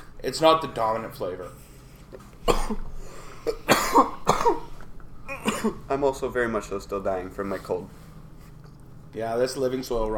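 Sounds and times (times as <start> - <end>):
speech: 0.2 - 4.6, 5.6 - 8.0, 9.1 - 10.1
harsh coughing from inhaling dense smoke: 2.4 - 5.9.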